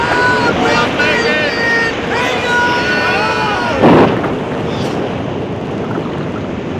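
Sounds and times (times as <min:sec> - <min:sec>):
several voices shouting and calling out: 0:00.0 - 0:04.0
heavy splash of storm wave: 0:00.0 - 0:06.7
storm waves crashing against a boat: 0:00.0 - 0:06.7.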